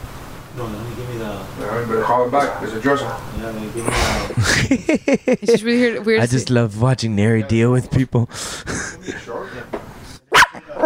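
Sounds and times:
speech: 0.6s - 9.7s
laughter: 3.8s - 6.1s, 8.4s - 9.5s
dog barking protectively: 10.3s - 10.8s.

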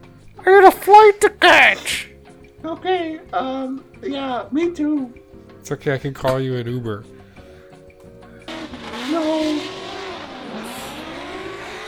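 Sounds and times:
speech: 0.4s - 7.1s
race car engine revving: 8.4s - 11.8s.

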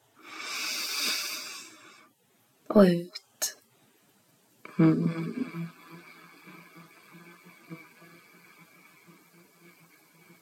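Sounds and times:
long deep inhale through the nose: 0.2s - 2.2s, 5.3s - 10.4s
speech: 2.8s - 3.2s, 4.8s - 5.8s.

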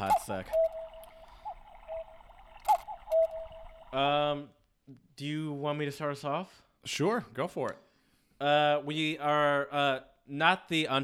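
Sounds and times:
speech: 0.0s - 0.7s, 4.0s - 7.8s, 8.4s - 11.0s
faint wristwatch ticking: 0.0s - 4.0s
low steady hum: 0.0s - 4.4s.

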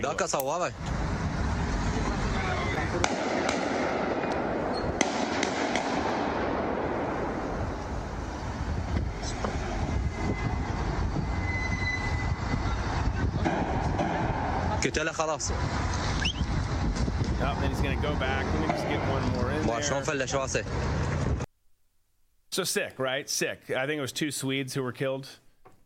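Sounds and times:
speech: 0.0s - 1.1s, 14.9s - 15.8s, 17.4s - 21.0s, 22.6s - 25.4s
dense rumbling street traffic noise: 0.0s - 21.5s
sharp distant gunshots: 3.0s - 7.2s.

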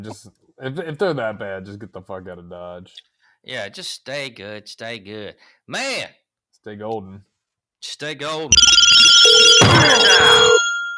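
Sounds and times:
speech: 0.0s - 10.6s
telephone ring sound effect triggered by pressing a phone button: 8.5s - 10.9s.

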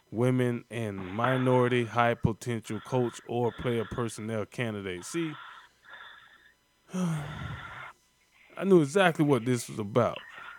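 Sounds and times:
speech: 0.1s - 5.5s, 6.9s - 7.6s, 8.6s - 10.3s
man breathing heavily out of breath: 2.7s - 4.1s, 5.1s - 8.0s.

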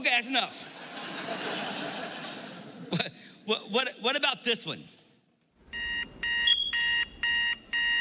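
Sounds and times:
speech: 0.0s - 2.2s, 2.9s - 5.0s
laughter: 0.6s - 3.1s
alarm clock beeping: 5.7s - 7.9s.

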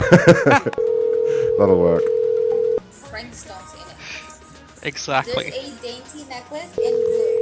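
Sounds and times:
laughter: 0.0s - 0.8s
speech: 0.1s - 2.2s, 4.8s - 7.3s
telephone tone while calling a phone number: 0.8s - 2.8s, 6.8s - 7.3s.

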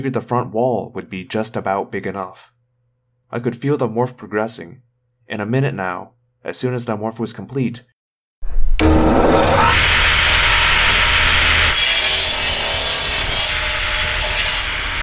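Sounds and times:
speech: 0.0s - 2.6s, 3.3s - 7.9s
harsh grinding shriek: 8.8s - 15.0s.

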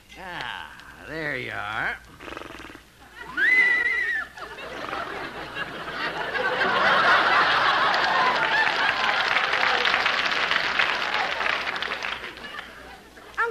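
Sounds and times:
speech: 1.1s - 2.4s
horse pulling a wagon whinnying: 2.2s - 4.3s
audience laughter: 3.1s - 13.4s
audience applause: 4.7s - 13.1s.

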